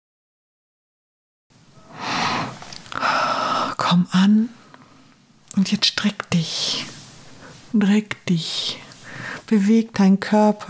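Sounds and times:
deep breath in and out during a guided relaxation exercise: 1.8s - 3.8s, 9.0s - 9.5s
speech: 3.9s - 4.6s, 5.6s - 6.9s, 7.7s - 8.8s, 9.5s - 10.6s.

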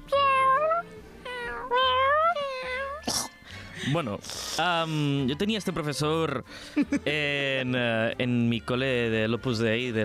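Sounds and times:
cat meowing with loud drawn-out wavering cries: 0.0s - 3.1s
speech: 3.9s - 10.0s.

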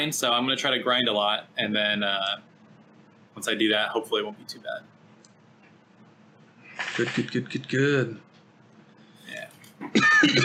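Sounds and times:
speech: 0.0s - 2.5s, 3.4s - 4.9s, 6.8s - 8.3s
person coughing with a rough throaty rasp: 9.8s - 10.4s.

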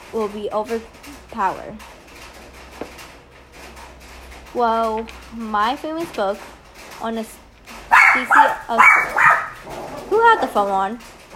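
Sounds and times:
low noise: 0.0s - 11.3s
speech: 0.1s - 2.0s, 4.5s - 7.4s, 8.2s - 9.2s, 10.1s - 11.1s
dog barking with a whining yelping edge: 7.9s - 10.4s.

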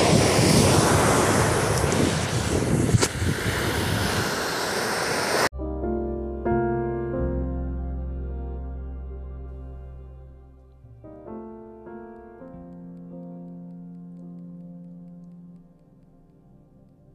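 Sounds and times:
ocean surf waves breaking: 0.0s - 5.5s
soft sustained instrumental music: 5.5s - 17.1s.

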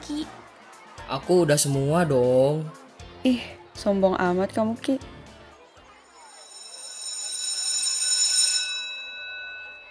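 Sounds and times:
faint chatter: 0.0s - 9.8s
speech: 0.1s - 0.4s, 1.1s - 5.1s
electric school bell ringing: 6.1s - 9.8s.

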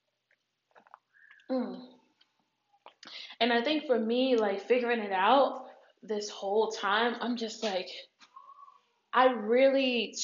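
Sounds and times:
wet mouth clicks and gulps of a person sipping water: 0.2s - 1.5s
speech: 1.5s - 1.9s, 3.4s - 8.1s, 9.2s - 10.2s.

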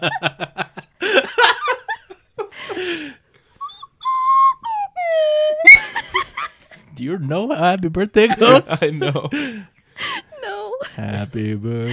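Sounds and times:
speech: 0.0s - 0.5s, 7.3s - 9.7s, 11.0s - 11.9s
laughter: 0.0s - 2.9s, 8.2s - 9.6s
whistle blown by an inexperienced player with wavering downward tones: 3.6s - 5.9s.

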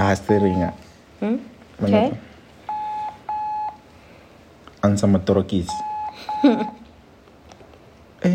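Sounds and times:
speech: 0.1s - 2.3s, 4.8s - 6.8s
phone call dialing tones: 2.7s - 3.8s, 5.7s - 6.8s.

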